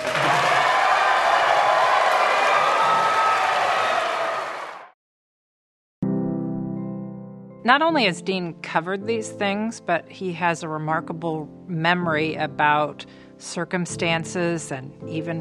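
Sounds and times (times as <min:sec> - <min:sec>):
audience applause in a cattle barn: 0:00.0 - 0:04.9
speech: 0:07.7 - 0:15.3.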